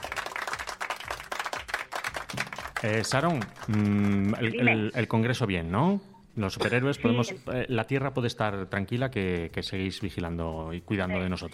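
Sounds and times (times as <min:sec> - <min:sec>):
canned applause sound effect of many hands clapping: 0:00.0 - 0:04.6
speech: 0:02.8 - 0:11.5.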